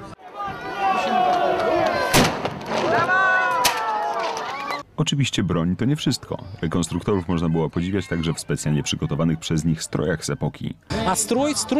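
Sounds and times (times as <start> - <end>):
background of voices and crowd noise: 0.0 - 11.7
small brass cannon firing: 2.1 - 3.8
speech: 5.0 - 11.7.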